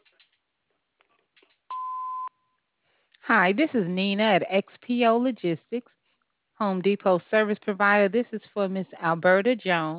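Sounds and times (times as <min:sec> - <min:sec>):
answering machine beep: 0:01.7 - 0:02.4
speech: 0:03.3 - 0:06.0, 0:06.6 - 0:09.9.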